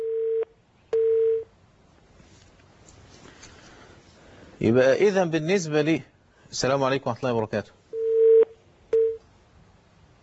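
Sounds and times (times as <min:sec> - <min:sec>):
telephone call tone beep: 0:00.0 - 0:01.5, 0:08.0 - 0:09.2
faint low hiss: 0:00.0 - 0:10.2
speech: 0:04.6 - 0:07.8.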